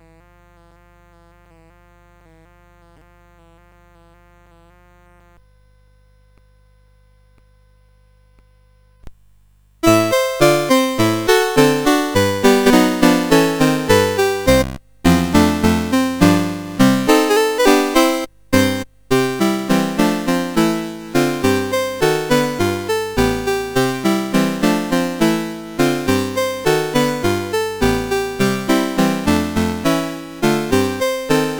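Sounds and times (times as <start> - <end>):
song played on a CSG8580R5 sound chip: 9.8 - 31.5.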